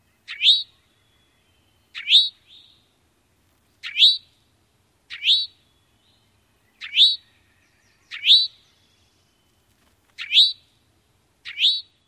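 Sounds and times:
Eastern Towhee nasal calls: 0:00.0 - 0:01.0, 0:01.9 - 0:02.8, 0:03.8 - 0:04.4, 0:05.1 - 0:05.7, 0:06.7 - 0:08.7, 0:10.2 - 0:10.7, 0:11.4 - 0:12.0.

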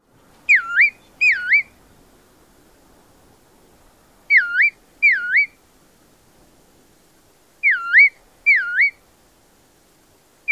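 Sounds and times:
Bristle-thighed Curlew calls: 0:00.5 - 0:01.8, 0:04.3 - 0:05.6, 0:07.6 - 0:09.0.

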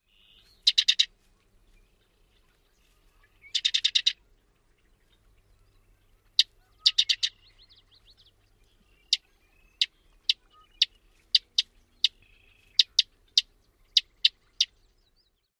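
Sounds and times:
Sedge Wren calls: 0:00.2 - 0:01.1, 0:03.2 - 0:04.2, 0:06.3 - 0:08.3, 0:08.9 - 0:14.8.

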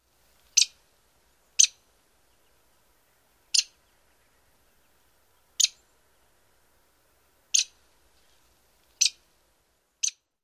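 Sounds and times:
Lewis's Woodpecker calling: 0:00.5 - 0:00.8, 0:01.5 - 0:01.8, 0:03.5 - 0:04.5, 0:05.6 - 0:05.9, 0:07.5 - 0:07.8, 0:09.0 - 0:09.2, 0:10.0 - 0:10.3.

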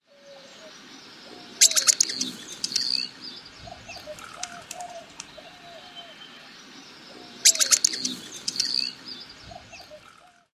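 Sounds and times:
outburst of calls: 0:01.3 - 0:06.2, 0:07.1 - 0:10.5.

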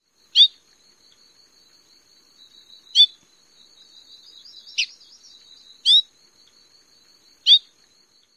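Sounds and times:
bird veek and other calls: 0:02.4 - 0:06.1, 0:07.4 - 0:07.7.

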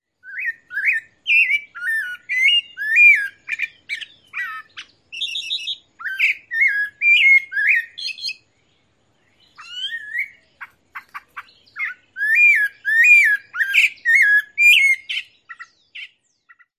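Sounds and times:
song and calls: 0:00.0 - 0:16.7.

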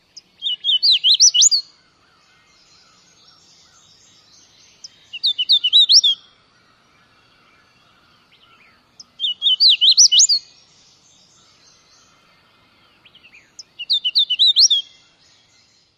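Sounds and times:
hooded warbler dawn song: 0:00.0 - 0:15.9.

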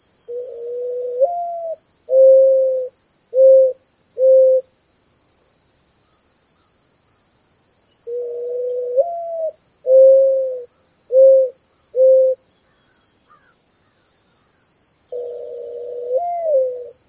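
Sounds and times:
coo and partial coo: 0:00.3 - 0:04.6, 0:08.1 - 0:12.4, 0:15.2 - 0:17.0.

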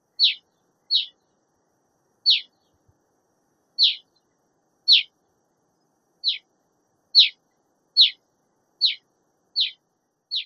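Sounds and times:
Black Rosy-Finch calls: 0:00.2 - 0:01.2, 0:02.2 - 0:02.6, 0:03.8 - 0:04.1, 0:04.9 - 0:05.1, 0:06.2 - 0:06.4, 0:07.2 - 0:07.4, 0:08.0 - 0:08.2, 0:08.8 - 0:09.0, 0:09.6 - 0:10.4.

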